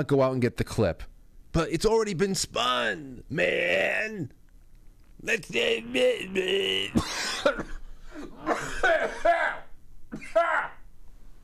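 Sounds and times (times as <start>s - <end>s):
speech: 0.0s - 4.4s, 5.2s - 10.6s
person imitating a raspy smoker's cough: 6.7s - 10.6s.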